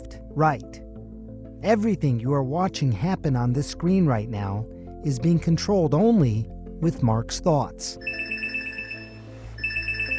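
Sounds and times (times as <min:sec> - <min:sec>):
speech: 0:00.4 - 0:00.8, 0:01.6 - 0:08.2
phone electronic alert tone for a health notification: 0:08.0 - 0:10.1.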